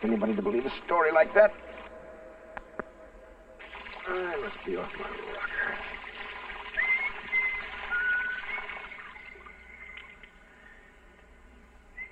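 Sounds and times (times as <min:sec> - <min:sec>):
speech: 0:00.0 - 0:01.9, 0:04.1 - 0:06.0
shower water running: 0:03.6 - 0:10.4.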